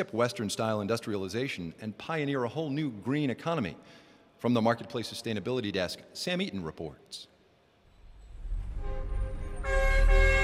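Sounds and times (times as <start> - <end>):
speech: 0.0 - 7.3
car horns honking in a traffic jam: 8.8 - 10.4.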